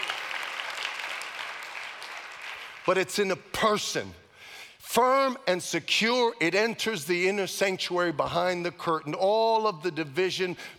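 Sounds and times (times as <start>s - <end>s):
church congregation clapping during a worship service: 0.0s - 3.2s
speech: 2.8s - 4.2s, 4.9s - 10.7s.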